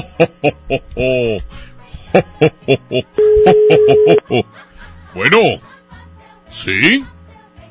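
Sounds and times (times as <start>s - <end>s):
speech: 0.2s - 5.7s, 6.5s - 7.2s
electronic ringback tone of a phone on an outgoing call: 3.2s - 4.2s.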